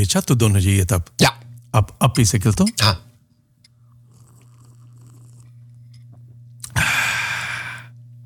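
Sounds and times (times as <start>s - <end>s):
speech: 0.0s - 3.1s
steady low electrical hum: 0.0s - 8.2s
slurping hot coffee: 3.8s - 6.8s.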